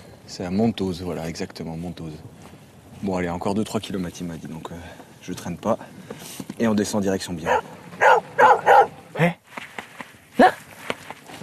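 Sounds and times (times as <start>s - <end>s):
speech: 0.3s - 2.4s, 3.0s - 7.8s, 9.2s - 9.4s
dog barking at a walker near Montose: 7.4s - 9.0s.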